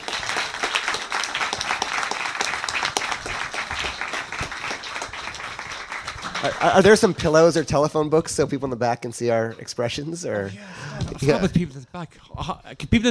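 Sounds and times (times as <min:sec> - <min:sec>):
sizable audience applause welcoming a guest: 0:00.0 - 0:07.6
speech: 0:06.4 - 0:13.0.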